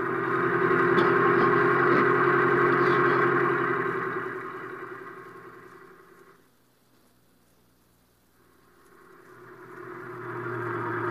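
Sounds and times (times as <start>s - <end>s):
taxi cab engine humming as the cab drives along: 0.0s - 11.0s.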